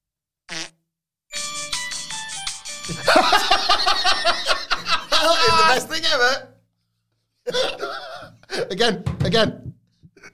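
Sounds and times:
tinny electronic novelty fart sound effect from a toy: 0.5 - 0.8
speech: 2.9 - 4.5, 5.2 - 6.5, 7.5 - 7.8, 8.5 - 9.6
loud laughter: 2.9 - 6.0, 7.5 - 8.5.

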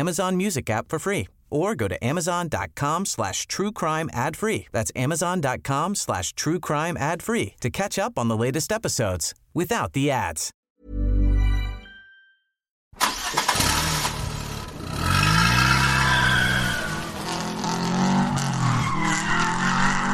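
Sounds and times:
speech: 0.0 - 11.0
car tyres skidding and squealing while spinning circles on asphalt: 13.5 - 20.1.

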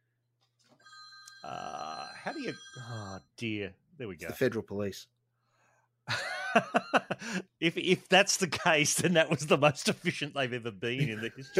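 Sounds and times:
telephone ringing with a steady electronic tone: 0.8 - 3.4
speech: 1.4 - 5.2, 6.1 - 11.5
laughter: 6.1 - 10.3, 10.9 - 11.5.

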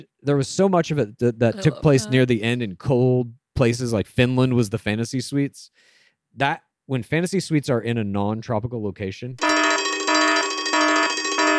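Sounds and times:
speech: 0.0 - 9.5
electronic alarm ringing in repeating bursts: 9.4 - 11.5.

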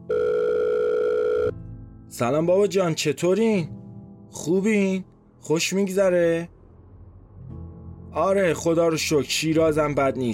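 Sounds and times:
telephone dial tone of a call placed with a phone card: 0.0 - 1.5
speech: 2.1 - 6.6, 8.2 - 10.3.

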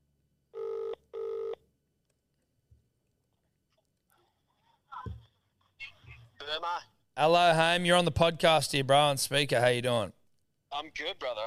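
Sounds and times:
outgoing phone call electronic ringback tones: 0.6 - 1.6
speech: 6.5 - 10.2, 10.8 - 11.4.

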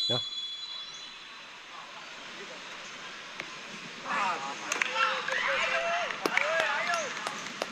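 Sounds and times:
speech: 0.1 - 0.4
large football stadium crowd murmuring: 1.6 - 7.7
football stadium crowd cheering and shouting at a scored penalty: 4.0 - 7.4.

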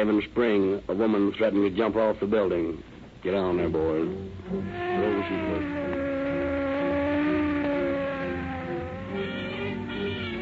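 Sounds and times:
speech: 0.0 - 6.0
police car engine whine speeding through downtown streets: 4.1 - 10.3.

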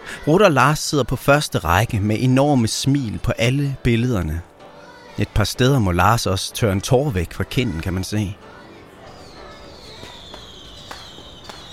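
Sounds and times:
speech: 0.2 - 4.5, 5.2 - 8.5
firework thin whistling tone gliding downward: 9.1 - 11.7.

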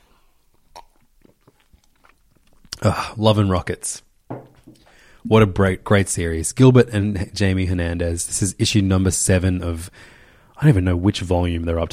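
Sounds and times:
person sipping water: 0.0 - 3.2
soft wet gulps swallowing water: 0.4 - 3.0
speech: 2.8 - 4.1, 5.2 - 11.9.

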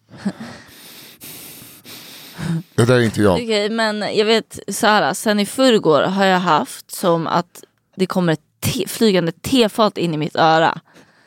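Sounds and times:
heavy breathing with a raspy wheeze: 0.0 - 2.8, 10.8 - 11.2
speech: 0.2 - 0.4, 2.5 - 11.0.

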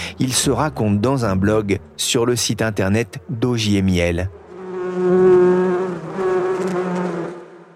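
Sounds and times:
speech: 0.2 - 4.4
many bees buzzing around a beekeeper's hives: 4.3 - 7.7.

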